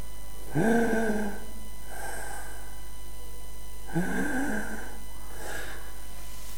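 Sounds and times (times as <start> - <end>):
voice imitating laboured wheezing breathing of an asthmatic child with bronchitis: 0.5 - 2.8, 3.9 - 6.0.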